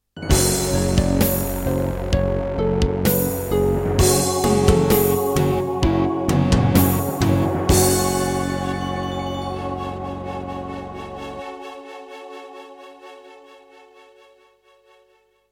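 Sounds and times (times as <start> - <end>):
Roland PMA-5 electronic instrument music: 0.2 - 12.1.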